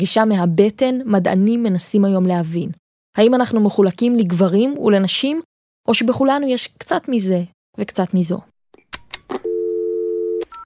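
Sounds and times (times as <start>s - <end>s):
speech: 0.0s - 8.5s
telephone ringing tone while placing a call: 9.4s - 10.6s.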